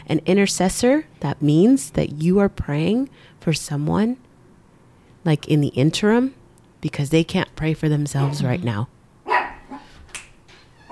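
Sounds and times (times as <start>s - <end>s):
speech: 0.1s - 4.3s, 5.2s - 9.0s
small dog barking: 9.2s - 10.0s
high yips: 9.3s - 10.0s.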